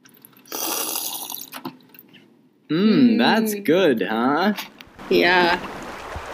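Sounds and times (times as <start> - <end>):
person sipping water: 0.0 - 1.6
speech: 2.7 - 5.8.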